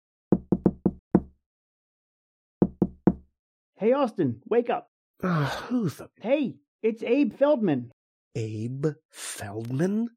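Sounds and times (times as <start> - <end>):
firm knocks on a wooden door: 0.3 - 1.3, 2.6 - 3.3
speech: 3.8 - 10.1.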